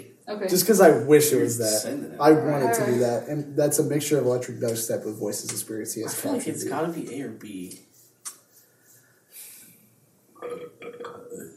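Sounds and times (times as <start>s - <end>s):
speech: 0.0s - 7.9s
loud drawn-out burp: 10.4s - 11.5s.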